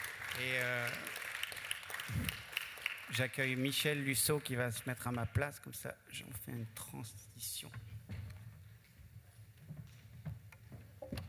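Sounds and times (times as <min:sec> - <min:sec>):
audience applauding in a room: 0:00.0 - 0:05.2
speech: 0:00.4 - 0:01.2, 0:03.1 - 0:07.9.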